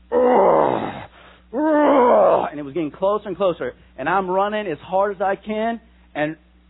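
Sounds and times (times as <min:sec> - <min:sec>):
man's voice imitating a lion's growl: 0:00.1 - 0:02.6
speech: 0:02.7 - 0:06.5.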